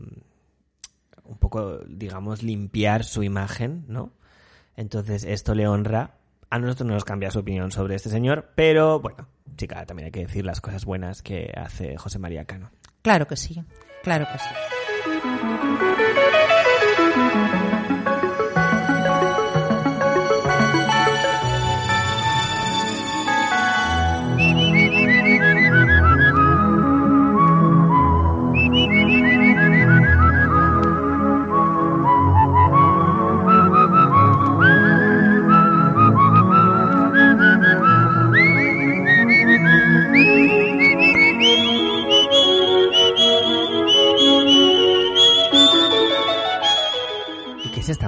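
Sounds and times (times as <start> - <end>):
speech: 1.5 - 4.2, 4.8 - 16.4, 17.2 - 18.2
classical arabesque with rippling arpeggios and whistle-like melody: 13.8 - 48.0.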